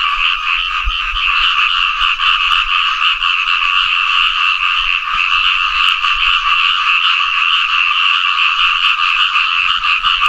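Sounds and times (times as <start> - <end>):
Asian grass frog Fejervarya limnocharis chorus: 0.0 - 10.2.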